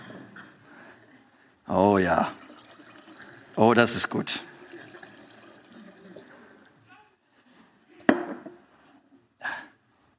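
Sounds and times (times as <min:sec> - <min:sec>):
speech: 0:01.7 - 0:02.4, 0:03.6 - 0:04.5
wine pouring in a gurgling stream: 0:01.7 - 0:06.9.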